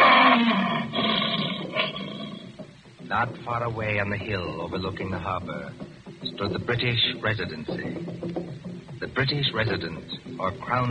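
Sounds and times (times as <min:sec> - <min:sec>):
lion roaring: 0:00.0 - 0:02.6
speech: 0:03.1 - 0:08.4, 0:09.0 - 0:10.8.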